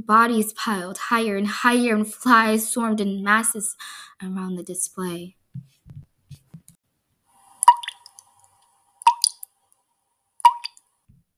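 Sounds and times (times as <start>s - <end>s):
speech: 0.0s - 5.7s
liquid dripping with a ringing plink: 7.6s - 9.5s, 10.4s - 10.8s.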